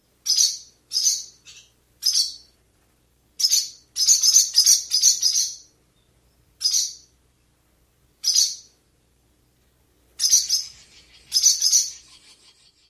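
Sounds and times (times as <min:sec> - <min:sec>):
chideep alarm calls: 0:00.2 - 0:02.5, 0:03.4 - 0:05.7, 0:06.6 - 0:07.1, 0:08.2 - 0:08.8, 0:10.2 - 0:12.8.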